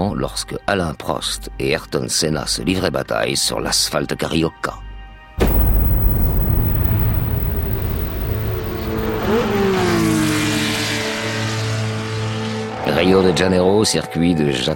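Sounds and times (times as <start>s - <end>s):
speech: 0.2s - 4.9s, 12.9s - 14.7s
Formula 1 race car engines roaring at the start of a Grand Prix at Jacarepaguá circuit: 6.3s - 13.7s.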